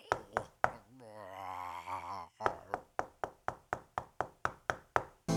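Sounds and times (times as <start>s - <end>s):
wavering groan-like moan: 0.0s - 2.8s
knocking on a door: 2.5s - 5.2s.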